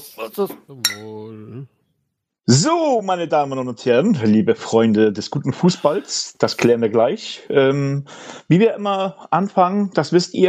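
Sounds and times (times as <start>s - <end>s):
speech: 0.2s - 1.8s, 2.5s - 10.4s
glasses clinking in a toast: 0.8s - 1.1s.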